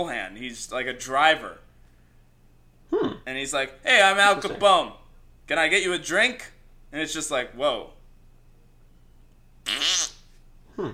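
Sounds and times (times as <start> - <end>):
speech: 0.0 - 1.7, 3.0 - 8.0, 9.7 - 10.1, 10.8 - 10.9
loud buzzy fart sound: 9.6 - 10.9.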